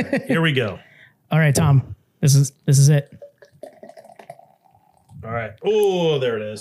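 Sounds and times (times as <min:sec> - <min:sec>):
laughter: 0:00.0 - 0:00.5
speech: 0:00.0 - 0:03.7, 0:05.2 - 0:06.6
beer pouring into a glass: 0:02.7 - 0:05.2.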